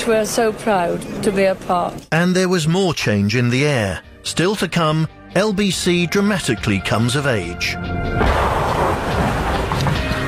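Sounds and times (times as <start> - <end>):
speech: 0.0 - 8.4
incoming artillery fire from batteries around Stanley: 8.2 - 10.0.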